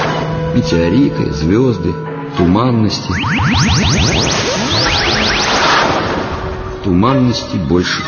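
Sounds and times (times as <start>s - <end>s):
speech: 0.6s - 4.9s, 6.8s - 8.0s
rising electronic chirps of radio interference on a bad connection: 3.0s - 6.5s.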